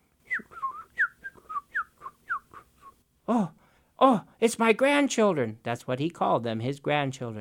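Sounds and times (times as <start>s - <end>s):
person whistling an imitation of birds calling: 0.2s - 3.0s
speech: 3.3s - 7.3s.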